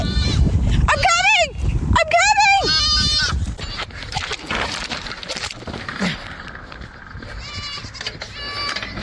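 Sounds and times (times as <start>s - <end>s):
goat bleating: 0.0s - 0.4s, 2.5s - 4.0s, 7.2s - 9.0s
steady outdoor noise: 0.0s - 9.0s.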